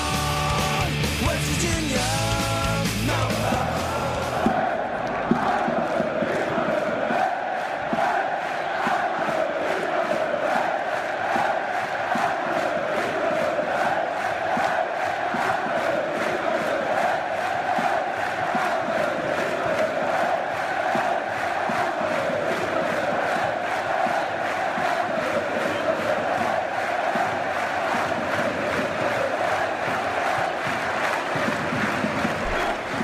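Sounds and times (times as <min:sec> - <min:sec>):
large crowd of football supporters chanting a stadium refrain: 0:00.0 - 0:33.0.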